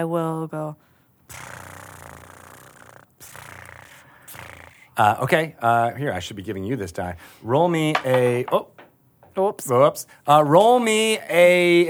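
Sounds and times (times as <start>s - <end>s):
speech: 0.0s - 1.6s, 5.0s - 8.7s, 9.4s - 11.8s
person imitating a cat purring with their voice: 1.3s - 5.2s.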